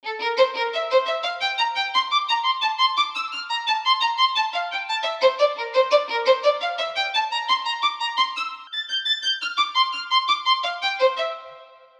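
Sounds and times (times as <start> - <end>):
inspirational music in Locrian mode: 0.0 - 11.9.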